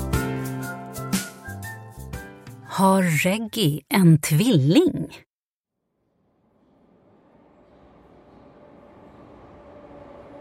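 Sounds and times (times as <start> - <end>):
speech: 2.8 - 5.3
train rolling into the platform: 7.1 - 10.3.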